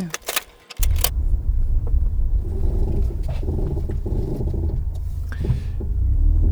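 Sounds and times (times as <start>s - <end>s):
keys jingling: 0.0s - 1.2s
car engine starting and rumbling: 0.0s - 6.5s.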